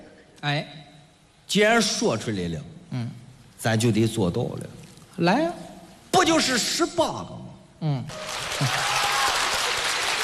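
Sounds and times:
speech: 0:00.4 - 0:00.9, 0:01.5 - 0:08.9
audience applauding: 0:08.1 - 0:10.2.

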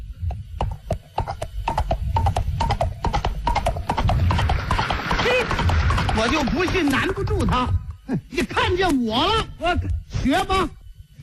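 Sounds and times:
human voice imitating galloping horse hoofbeats: 0:00.3 - 0:08.8
speech: 0:06.2 - 0:10.8.

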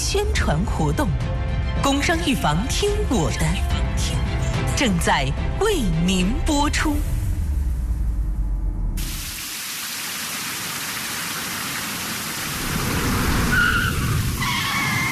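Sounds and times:
speech: 0:00.1 - 0:04.2, 0:04.8 - 0:07.1
deep low rumble: 0:05.5 - 0:09.2
heavy rain pouring on a slippery road: 0:10.6 - 0:15.0.

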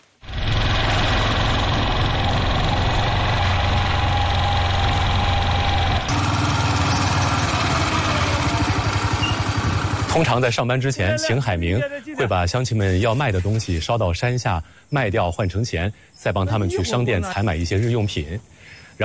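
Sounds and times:
motorcycle engine starting and running: 0:00.2 - 0:10.6
speech: 0:10.2 - 0:19.0.

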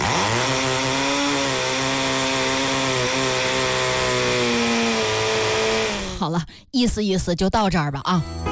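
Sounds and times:
power drill whirring: 0:00.0 - 0:06.2
speech: 0:06.3 - 0:08.5.

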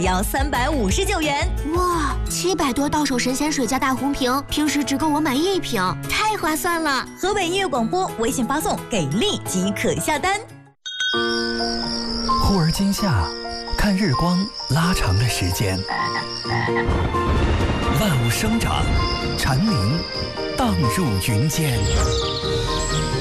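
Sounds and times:
speech: 0:00.0 - 0:11.3, 0:12.5 - 0:23.0
music: 0:00.0 - 0:23.2
cicadas droning in summer: 0:11.2 - 0:23.2.

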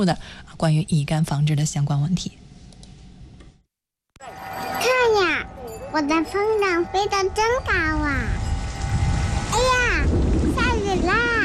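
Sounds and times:
speech: 0:00.0 - 0:02.5, 0:06.0 - 0:08.4
steady rain shower: 0:05.9 - 0:11.4
low rumbling thunder: 0:06.9 - 0:11.4.

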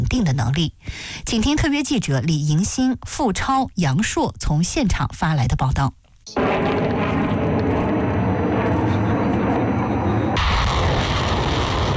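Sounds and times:
speech: 0:00.1 - 0:07.0
drone swarm rising into the air during a military exercise: 0:06.3 - 0:11.9.

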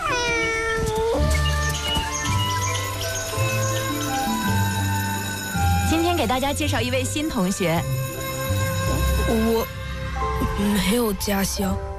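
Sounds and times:
kitten mewing: 0:00.0 - 0:01.4
mother cat meowing: 0:00.0 - 0:02.1
sustained tonal background: 0:01.8 - 0:11.9
speech: 0:06.2 - 0:08.1, 0:09.3 - 0:09.8, 0:10.6 - 0:11.9.

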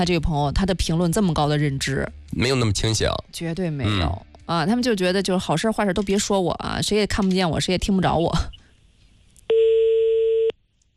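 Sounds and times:
speech: 0:00.0 - 0:08.6
telephone tone while a call is placed: 0:09.5 - 0:10.5.

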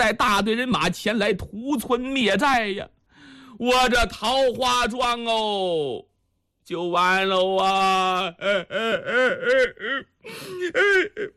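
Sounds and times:
speech: 0:00.1 - 0:03.0, 0:03.6 - 0:06.1, 0:06.7 - 0:11.3
person imitating crying with wailing sobs: 0:07.7 - 0:11.3.

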